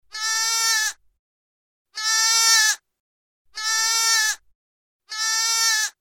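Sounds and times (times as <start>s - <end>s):
lamb: 0.1s - 1.0s, 2.0s - 2.8s, 3.6s - 4.4s, 5.1s - 5.9s.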